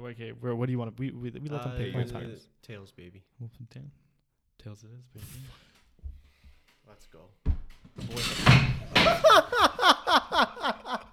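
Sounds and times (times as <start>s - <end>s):
speech: 0.0s - 4.0s, 4.6s - 5.6s, 6.9s - 11.0s
wooden chair cracking and collapsing under someone: 7.6s - 9.3s
rhythmic breathy laughter: 9.0s - 11.1s.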